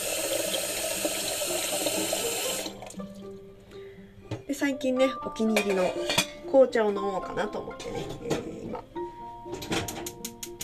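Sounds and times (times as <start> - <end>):
water running from a tap to top up water for boiling tea: 0.0 - 3.3
speech: 4.6 - 8.5.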